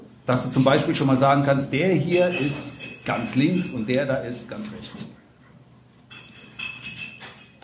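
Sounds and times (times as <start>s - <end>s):
speech: 0.3s - 5.2s
wine glasses clinking as they're set down during a wine tasting: 1.8s - 5.1s, 6.1s - 7.6s.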